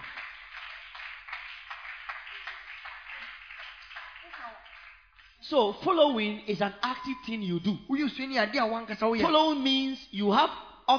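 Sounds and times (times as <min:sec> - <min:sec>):
audience clapping: 0:00.0 - 0:05.5
speech: 0:05.4 - 0:10.9.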